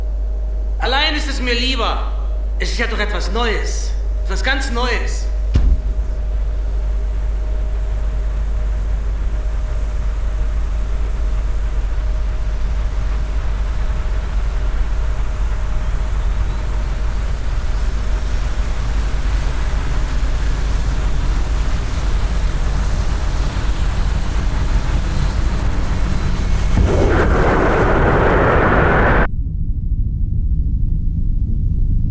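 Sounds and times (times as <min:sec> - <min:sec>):
aircraft engine droning over the ocean: 0:00.0 - 0:32.0
speech: 0:00.9 - 0:05.4
rushing burst of noise: 0:24.5 - 0:29.3.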